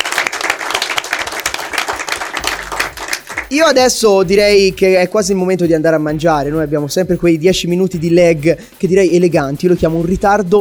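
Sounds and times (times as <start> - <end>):
live audience applause: 0.0 - 3.5
speech: 3.5 - 10.5.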